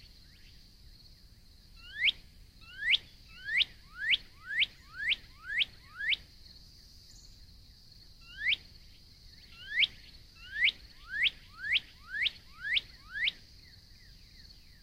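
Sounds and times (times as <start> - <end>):
faint high hiss: 0.0 - 14.8
northern cardinal song: 1.8 - 6.3, 8.2 - 8.7, 9.4 - 14.8.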